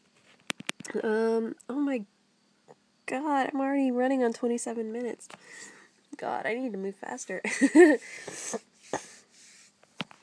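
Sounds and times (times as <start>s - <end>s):
speech: 0.9s - 2.2s, 3.1s - 9.0s
quick sniffles through the nose: 8.0s - 9.8s.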